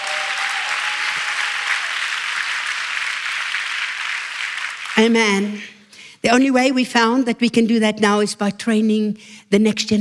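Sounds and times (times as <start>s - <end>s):
audience clapping: 0.0s - 5.6s
speech: 5.0s - 9.9s.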